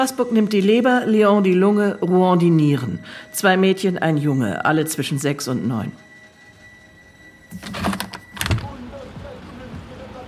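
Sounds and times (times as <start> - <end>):
speech: 0.0 - 6.1, 7.5 - 8.0
window being opened in an office, rattling and scraping: 7.5 - 8.8.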